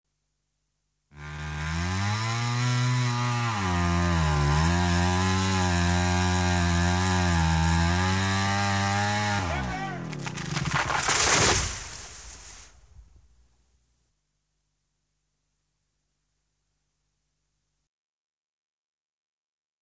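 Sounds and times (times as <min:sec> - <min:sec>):
chainsaw: 0:01.1 - 0:12.0.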